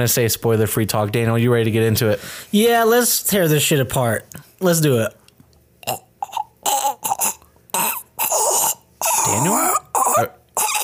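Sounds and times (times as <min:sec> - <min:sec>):
speech: 0:00.0 - 0:05.2, 0:05.8 - 0:06.0, 0:09.3 - 0:10.4
person clearing throat: 0:05.8 - 0:10.8
person coughing: 0:06.2 - 0:10.8.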